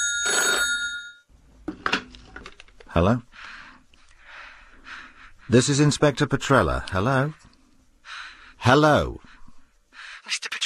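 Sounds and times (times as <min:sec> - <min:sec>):
telephone bell ringing: 0:00.0 - 0:01.3
speech: 0:03.0 - 0:03.5, 0:05.5 - 0:07.5, 0:08.6 - 0:09.3.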